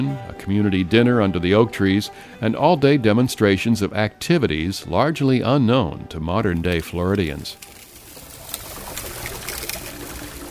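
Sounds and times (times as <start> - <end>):
speech: 0.0 - 7.8
sugarcane juice pouring into iron cauldron: 6.5 - 10.4.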